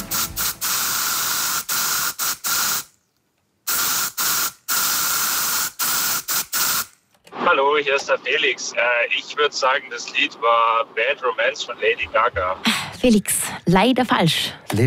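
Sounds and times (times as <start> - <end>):
deodorant spraying from a spray can: 0.0 - 2.9, 3.7 - 6.9
speech: 7.6 - 14.8.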